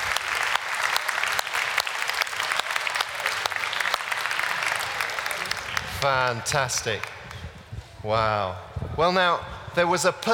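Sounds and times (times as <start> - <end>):
room full of people clapping: 0.0 - 7.5
speech: 6.0 - 7.2, 8.0 - 10.3.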